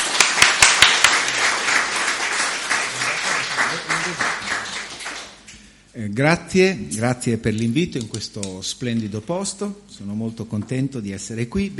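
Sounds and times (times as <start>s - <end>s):
audience applauding: 0.0s - 5.4s
speech: 6.0s - 11.7s.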